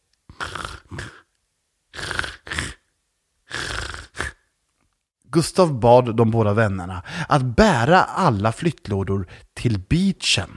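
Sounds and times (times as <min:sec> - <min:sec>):
voice imitating snoring: 0:00.3 - 0:01.3, 0:01.9 - 0:04.5
speech: 0:05.4 - 0:10.5.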